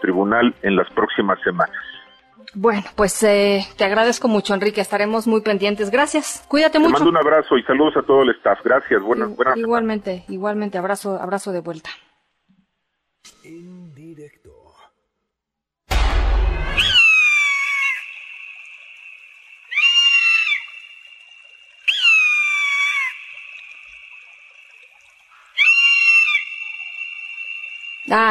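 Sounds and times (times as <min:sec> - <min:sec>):
speech: 0:00.0 - 0:12.0, 0:28.1 - 0:28.2
white-tailed eagle yelping calls: 0:16.8 - 0:18.3, 0:19.6 - 0:24.2, 0:25.4 - 0:28.2.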